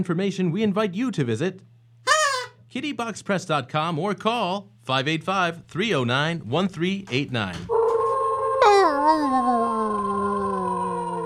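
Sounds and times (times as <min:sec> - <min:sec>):
speech: 0:00.0 - 0:01.7, 0:02.8 - 0:07.8
person imitating a dog howling: 0:02.1 - 0:02.5, 0:07.8 - 0:11.2
person imitating a dog yipping: 0:02.1 - 0:02.6, 0:08.6 - 0:11.2.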